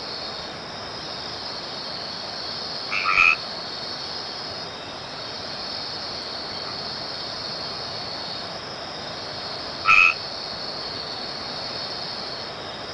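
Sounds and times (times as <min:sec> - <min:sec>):
steady high hiss: 0:00.0 - 0:12.9
white-edged treefrog Boana albomarginata calls: 0:01.4 - 0:08.4, 0:09.5 - 0:12.4.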